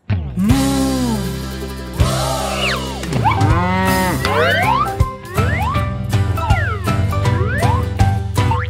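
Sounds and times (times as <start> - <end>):
cheerful children's song music with sliding tones and jingly effects: 0.4 - 8.6
long drawn-out cow moo: 3.2 - 5.5.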